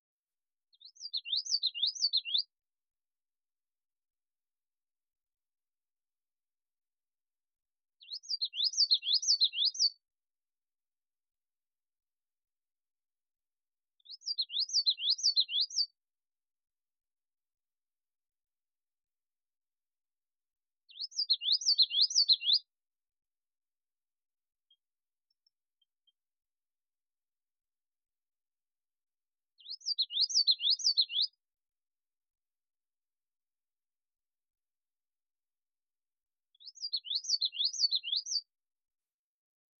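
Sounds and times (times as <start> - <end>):
yellowthroat singing in Ontario: 0.7 - 2.6, 8.0 - 10.0, 14.0 - 16.0, 20.9 - 22.7, 29.6 - 31.4, 36.5 - 38.5.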